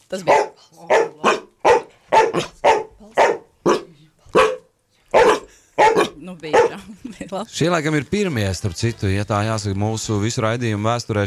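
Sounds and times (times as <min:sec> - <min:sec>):
speech: 0:00.1 - 0:01.2, 0:02.4 - 0:02.6, 0:06.3 - 0:11.2
two dogs barking in a radio studio: 0:00.2 - 0:07.0.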